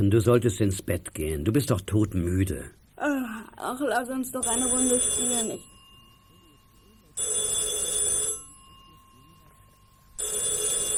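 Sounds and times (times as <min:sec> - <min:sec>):
speech: 0:00.0 - 0:05.8
loud ringing signal calling to a radio handset: 0:04.4 - 0:10.9.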